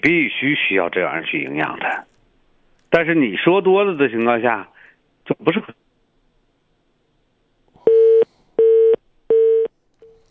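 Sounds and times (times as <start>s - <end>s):
speech: 0.0s - 2.1s, 2.9s - 4.7s, 5.3s - 5.8s
telephone busy tone after dropped call on a phone line: 7.9s - 10.2s.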